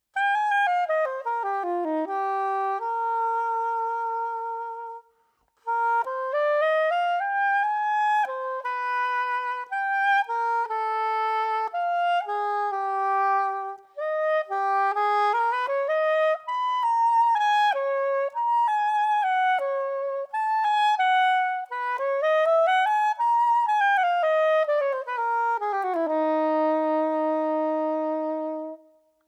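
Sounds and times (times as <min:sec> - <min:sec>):
soprano saxophone with tipped bell: 0:00.0 - 0:29.2.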